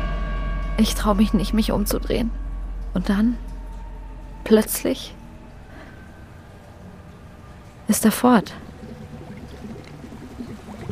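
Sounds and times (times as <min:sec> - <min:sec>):
speech: 0:00.8 - 0:03.5, 0:04.4 - 0:05.2, 0:07.9 - 0:08.6
water flowing in a window, rushing and burbling: 0:08.3 - 0:10.8.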